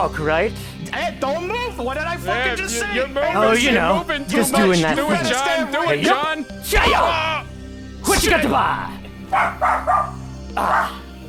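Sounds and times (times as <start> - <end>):
speech: 0.0 - 7.4, 8.1 - 11.0
dogs barking: 8.3 - 11.2.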